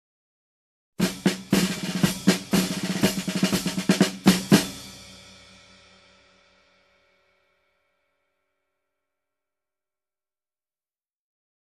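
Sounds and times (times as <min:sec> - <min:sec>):
marching drums: 0:01.0 - 0:05.9.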